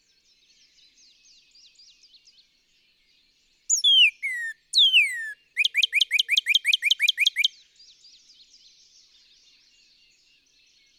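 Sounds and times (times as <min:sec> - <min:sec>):
Northern cardinal singing downslurred whistles: 0:03.7 - 0:07.5.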